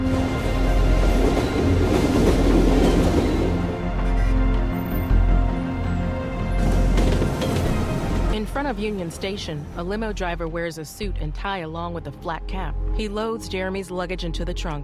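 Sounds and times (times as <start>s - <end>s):
train rumbling across a rail bridge: 0.0s - 9.7s
speech: 8.8s - 14.8s.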